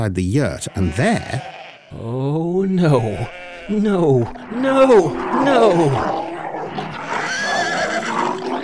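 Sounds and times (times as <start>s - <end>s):
speech: 0.0s - 6.3s
small white horse neighing loudly at night: 0.6s - 8.6s
wolf snarling: 3.3s - 8.6s.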